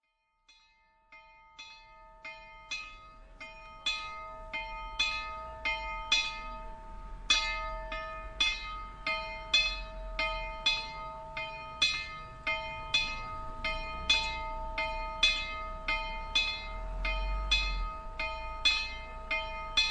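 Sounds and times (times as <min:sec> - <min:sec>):
cracked bell ringing: 0:00.5 - 0:19.8.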